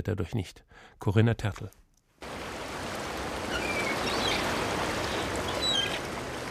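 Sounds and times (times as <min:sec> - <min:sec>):
speech: 0:00.0 - 0:01.8
surf washing on a beach in the morning: 0:02.2 - 0:06.4
seagull calls: 0:03.4 - 0:06.4.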